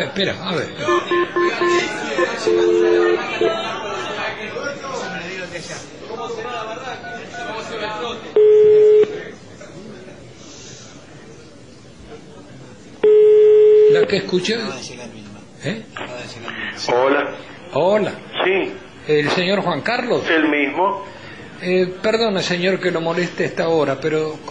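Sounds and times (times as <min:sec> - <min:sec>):
speech: 0:00.0 - 0:04.1, 0:14.0 - 0:15.0, 0:15.6 - 0:24.4
busy noise: 0:00.0 - 0:24.4
telephone keypad beeps as a number is dialed: 0:00.8 - 0:03.5.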